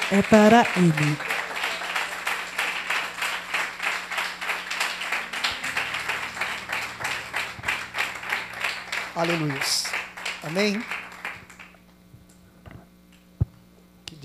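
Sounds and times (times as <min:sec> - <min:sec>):
church audience clapping rhythmically: 0:00.0 - 0:11.8
speech: 0:00.1 - 0:01.3, 0:09.2 - 0:11.0
low hum: 0:02.5 - 0:12.7.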